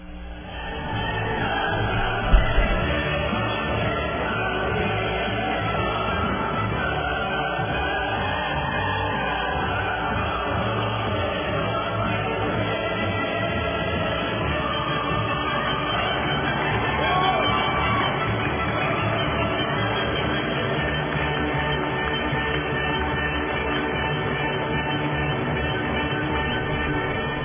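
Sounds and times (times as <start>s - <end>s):
orchestral anthem: 0.3s - 27.4s
applause: 16.0s - 21.8s.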